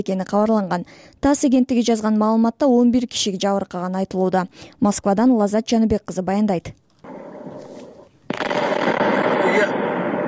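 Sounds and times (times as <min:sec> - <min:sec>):
speech: 0:00.0 - 0:06.8
artillery shells and mines exploding in a fire at a military ammunition depot in Russia: 0:07.1 - 0:10.2.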